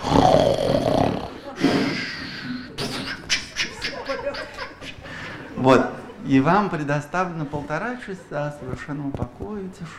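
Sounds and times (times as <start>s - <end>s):
voice imitating snoring: 0.0s - 3.1s
laughter: 1.4s - 6.5s
speech: 5.6s - 9.9s.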